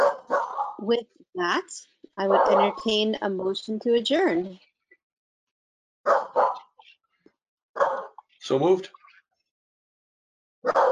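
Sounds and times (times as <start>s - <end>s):
dog barking: 0.0s - 0.8s, 2.2s - 2.8s, 6.1s - 6.8s, 7.8s - 8.2s, 10.6s - 10.9s
speech: 0.8s - 4.7s, 8.4s - 9.0s.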